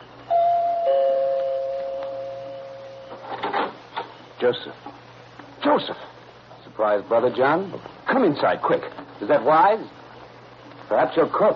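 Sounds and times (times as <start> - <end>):
doorbell two-note ding-dong chime: 0.3 - 3.2
speech: 4.4 - 4.9, 5.6 - 6.1, 6.8 - 10.0, 10.9 - 11.5.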